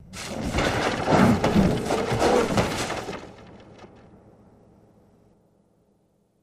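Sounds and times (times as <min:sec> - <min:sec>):
books flying through air: 0:00.0 - 0:04.1.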